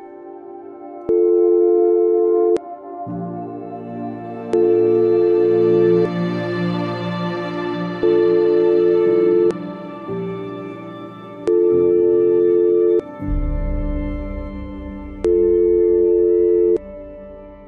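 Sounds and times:
telephone beep tone in repeated bursts: 1.1s - 2.6s, 4.5s - 6.1s, 8.0s - 9.6s, 11.4s - 13.1s, 15.2s - 16.8s
low humming drone: 1.2s - 17.6s.

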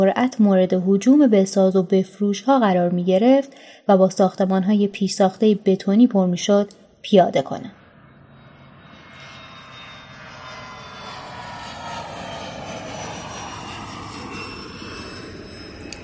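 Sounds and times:
speech: 0.0s - 7.8s
high whining hum of airplane landing: 6.7s - 16.0s
airplane landing with engine roar: 7.7s - 16.0s.

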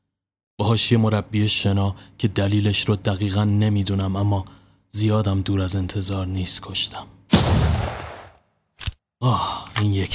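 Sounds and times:
speech: 0.6s - 7.6s, 9.2s - 10.1s
gunshot: 7.3s - 8.4s.

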